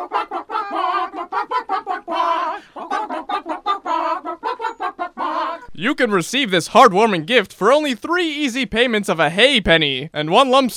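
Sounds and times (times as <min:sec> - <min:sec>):
chicken clucks arranged into a comedic musical number: 0:00.0 - 0:05.7
speech: 0:05.8 - 0:10.7.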